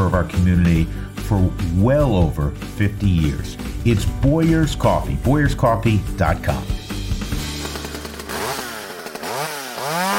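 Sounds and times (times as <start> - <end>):
speech: 0.0 - 6.8
small gas-powered tool engine revving: 7.2 - 10.1.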